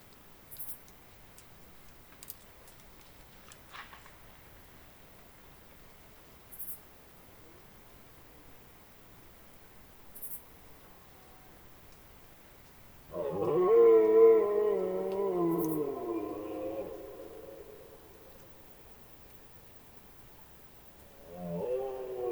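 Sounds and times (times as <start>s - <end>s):
faint ticks and rustles: 0.0s - 22.3s
rutting deer bellowing at night: 13.1s - 18.6s, 21.1s - 22.3s.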